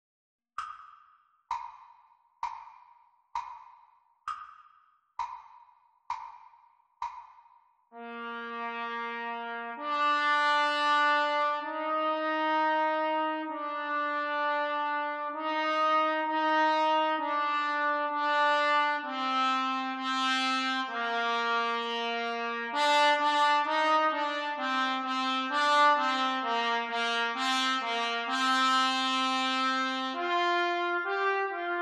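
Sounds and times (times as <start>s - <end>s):
trumpet duet practice: 8.0s - 31.7s.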